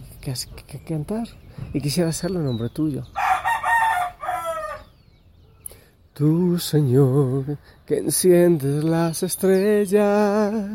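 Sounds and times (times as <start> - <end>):
speech: 0.2 - 3.2, 6.2 - 10.7
rooster crowing: 3.2 - 4.9.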